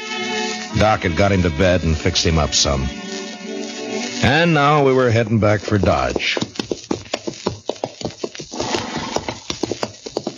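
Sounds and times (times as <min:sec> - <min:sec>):
speech: 0:00.8 - 0:03.2, 0:04.2 - 0:06.5
horse hooves clip-clopping: 0:05.1 - 0:10.3.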